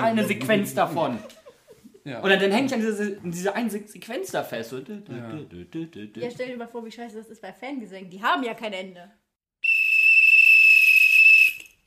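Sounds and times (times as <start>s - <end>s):
speech: 0.0s - 1.4s, 2.0s - 9.2s
laughter: 0.0s - 2.0s, 4.9s - 6.4s
shrill whistle blast blown by the host: 9.6s - 11.8s.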